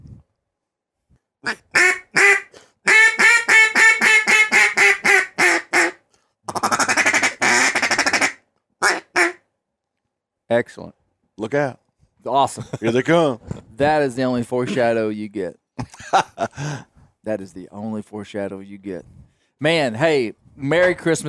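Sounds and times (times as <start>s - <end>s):
speech: 1.4s - 1.9s, 10.5s - 21.2s
duck call blown in loud quacks: 1.4s - 9.4s.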